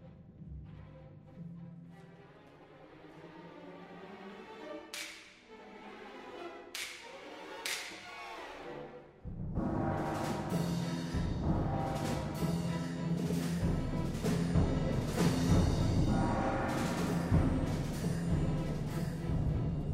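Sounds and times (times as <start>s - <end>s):
soft sustained orchestral backdrop: 0.0s - 19.9s
orchestral whip cracks: 4.9s - 5.4s, 6.7s - 8.2s.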